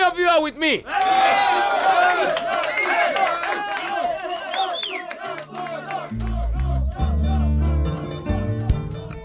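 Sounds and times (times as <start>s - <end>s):
speech: 0.4s - 2.4s
crowd cheering and whooping in canteen: 0.9s - 7.8s
scattered clapping in canteen: 1.0s - 7.2s.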